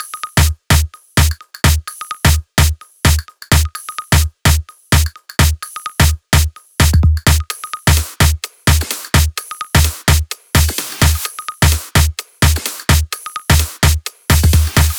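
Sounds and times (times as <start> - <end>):
dirty Dutch drum kit: 0.0 - 14.9.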